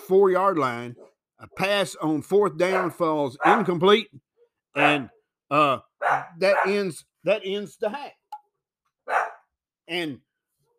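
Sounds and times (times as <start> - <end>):
speech: 0.1 - 4.2, 4.8 - 8.2, 9.9 - 10.3
house dog barking: 2.7 - 5.1, 6.0 - 6.8, 9.0 - 9.5.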